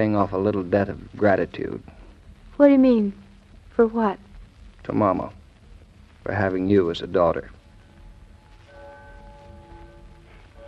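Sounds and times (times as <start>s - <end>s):
speech: 0.0s - 2.0s, 2.6s - 3.2s, 3.8s - 5.4s, 6.2s - 7.6s
soft steady hiss: 0.0s - 10.6s
church bell striking twelve: 8.6s - 10.6s.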